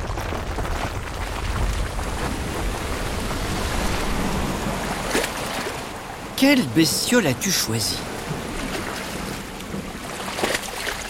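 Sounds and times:
wind rushing over the microphone: 0.0s - 6.4s
waves crashing against cliffs: 1.3s - 11.0s
speech: 6.4s - 8.1s.

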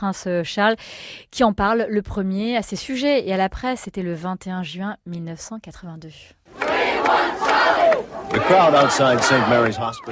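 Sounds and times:
speech: 0.0s - 6.4s, 7.1s - 10.1s
large outdoor crowd outside hospital chanting a name and cheering: 6.5s - 10.1s.

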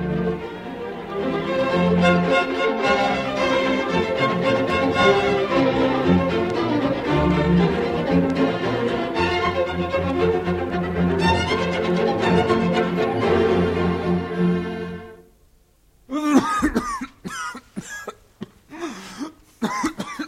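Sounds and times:
music: 0.0s - 15.4s
man in a harsh rasping coughing fit: 16.1s - 20.2s.

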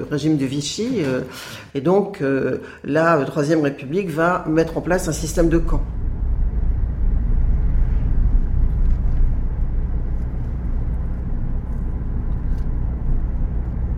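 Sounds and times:
speech: 0.0s - 6.0s
hunters' cars driving past on a road: 5.0s - 13.9s.

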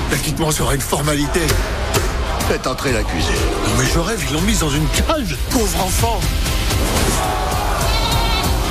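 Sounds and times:
speech: 0.1s - 7.4s
goat giving a long quavering bleat: 7.7s - 8.5s.

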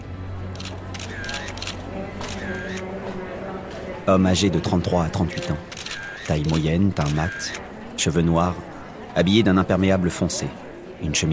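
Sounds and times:
camera shutter clicks: 0.6s - 2.8s, 5.4s - 7.6s
speech: 4.0s - 5.7s, 6.3s - 11.3s.

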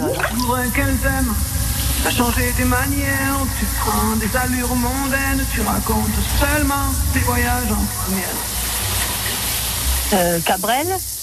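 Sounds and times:
man singing a wavering wordless melody: 0.0s - 8.6s
shower running with spraying water hiss: 0.0s - 11.2s
speech: 0.5s - 8.6s, 10.1s - 11.2s.

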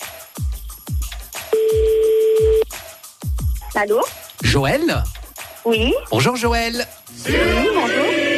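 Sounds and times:
thumping rhythmic beat: 0.4s - 7.8s
telephone ringback tone on a telephone line: 1.6s - 2.6s
speech: 3.8s - 8.2s.

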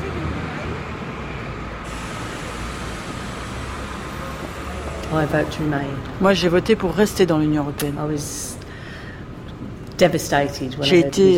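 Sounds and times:
traffic rumble at a bus station: 0.0s - 11.3s
idling bus engines at a bus station: 1.8s - 7.3s
speech: 5.1s - 8.6s, 10.0s - 11.3s.

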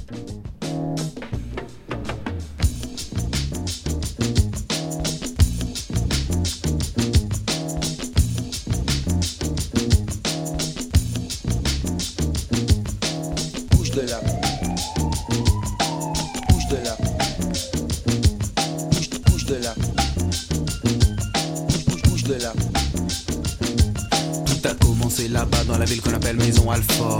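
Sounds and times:
looping sampled bass groove: 0.0s - 27.1s
punchy hip-hop drum beat: 0.5s - 27.1s
siren-like rising and falling tone: 13.7s - 18.6s.

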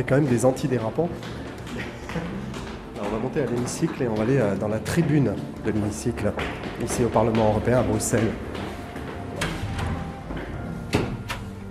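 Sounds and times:
speech: 0.0s - 1.5s, 3.1s - 8.7s
automatic door opening with clunks and knocks: 6.3s - 11.6s.

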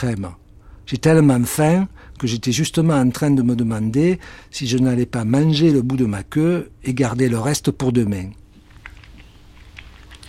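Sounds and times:
speech: 0.0s - 8.4s
wet gulping and slurping: 8.5s - 10.2s.

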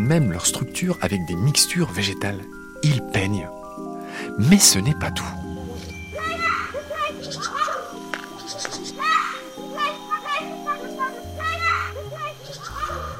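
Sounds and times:
steady low tonal backdrop: 0.0s - 13.1s
speech: 0.1s - 5.4s
MacGregor's bowerbird mimicking children playing: 6.2s - 13.1s.

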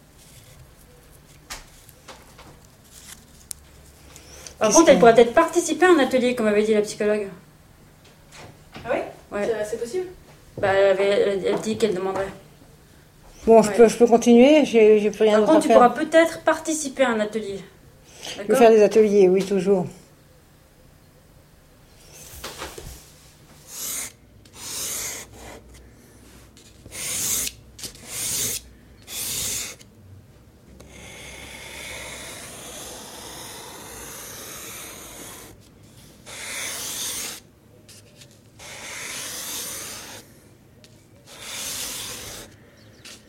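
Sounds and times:
speech: 4.6s - 7.4s, 9.4s - 12.4s, 13.4s - 20.0s
charcoal stick scraping across paper: 23.6s - 25.9s, 26.5s - 29.8s, 30.8s - 43.2s.

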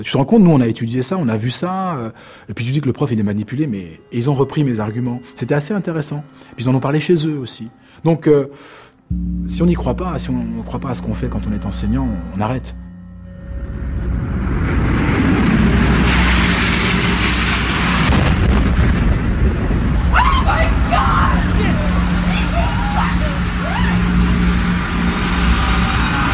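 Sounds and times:
speech: 0.0s - 12.8s
sharp blast: 9.1s - 19.9s
rumbling explosions: 12.9s - 20.1s
people shouting: 20.1s - 24.2s, 25.4s - 26.3s.

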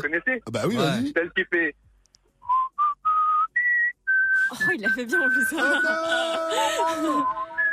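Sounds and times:
speech: 0.0s - 1.8s, 4.5s - 7.4s
person whistling a children's cartoon theme song: 2.5s - 6.1s, 6.8s - 7.7s
laughter: 5.4s - 7.6s.

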